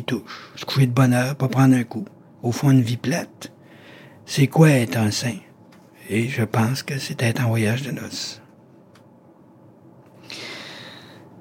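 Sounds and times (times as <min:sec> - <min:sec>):
speech: 0:00.0 - 0:03.6, 0:04.3 - 0:05.5, 0:06.1 - 0:08.4
deep inhale: 0:03.6 - 0:04.2, 0:10.2 - 0:11.3.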